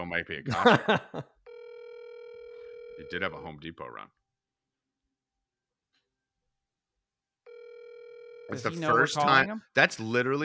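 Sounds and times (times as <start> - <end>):
speech: 0.0 - 1.4, 3.0 - 4.2, 8.5 - 10.4
laughter: 0.5 - 1.4
electronic telephone ring tone of an outgoing call: 1.5 - 3.5, 7.5 - 9.4.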